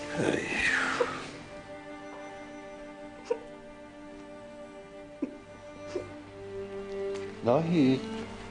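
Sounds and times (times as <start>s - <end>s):
speech: 0.2s - 1.2s, 7.4s - 8.1s
woman whimpering softly: 3.2s - 3.6s, 5.1s - 6.2s.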